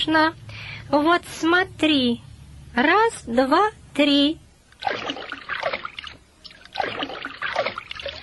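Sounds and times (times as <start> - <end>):
speech: 0.0 - 5.2
water splashing as a darter bird dives and swims underwater: 4.8 - 8.2.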